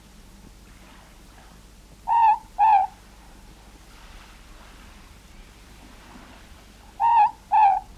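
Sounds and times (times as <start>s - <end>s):
Morepork two-note hoot in New Zealand: 2.0s - 3.0s, 7.0s - 7.9s.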